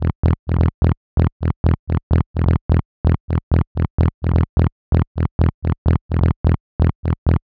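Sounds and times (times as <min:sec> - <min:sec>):
electro house distorted bass at 128 bpm: 0:00.0 - 0:07.4.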